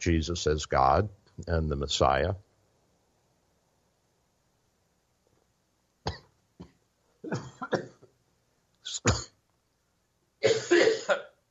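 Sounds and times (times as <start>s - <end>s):
speech: 0.0s - 2.5s, 8.9s - 9.3s
person coughing after something went down the wrong way: 6.1s - 8.0s, 9.0s - 9.4s, 10.4s - 11.4s.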